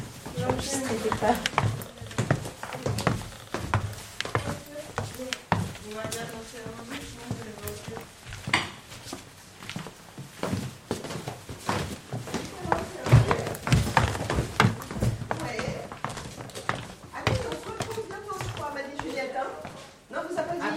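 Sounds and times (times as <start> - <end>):
footsteps going down wooden stairs: 0.0 - 20.6
speech: 0.5 - 1.8.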